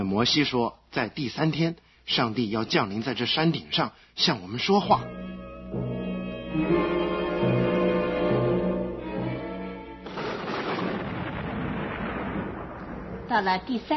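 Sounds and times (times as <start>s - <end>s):
speech: 0.1s - 5.8s, 13.3s - 13.9s
deep sustained horn-like tones: 5.0s - 9.8s
thunder rumbling: 10.0s - 13.9s.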